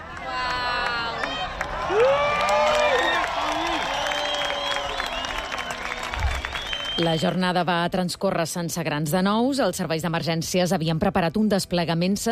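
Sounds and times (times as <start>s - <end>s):
outdoor crowd cheering during solar eclipse: 0.0s - 7.6s
crowd whoops and shouts during solar eclipse: 0.2s - 7.0s
speech: 7.0s - 12.2s.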